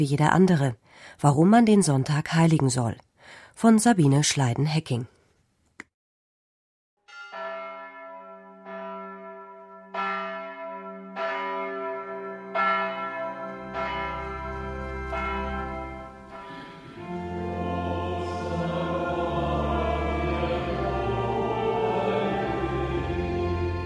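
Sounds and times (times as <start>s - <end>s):
speech: 0.0s - 5.2s
church bells ringing: 7.1s - 23.8s
congregation singing: 13.6s - 23.8s.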